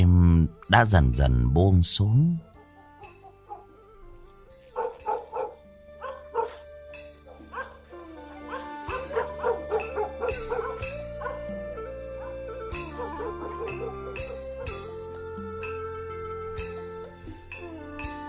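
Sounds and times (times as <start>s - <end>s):
speech: 0.7s - 2.5s
dogs barking in a village at night: 3.0s - 3.8s, 4.7s - 14.9s.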